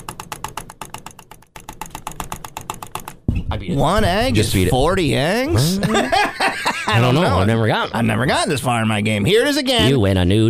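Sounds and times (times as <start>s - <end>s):
rapid computer mouse clicking: 0.0s - 3.3s
speech: 3.5s - 10.4s
laughter: 3.8s - 8.0s.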